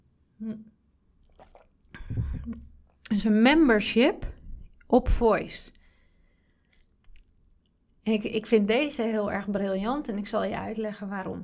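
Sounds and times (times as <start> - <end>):
speech: 0.4 - 0.8, 2.1 - 5.8, 8.0 - 11.4
slurping gulp and swallow of a drink: 1.2 - 3.0, 5.7 - 8.0
person sipping a drink: 1.2 - 3.1, 5.7 - 8.0.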